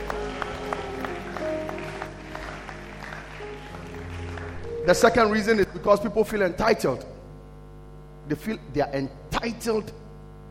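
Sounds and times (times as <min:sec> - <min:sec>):
audience clapping hands: 0:00.0 - 0:05.9
speech: 0:04.9 - 0:07.1, 0:08.3 - 0:10.0.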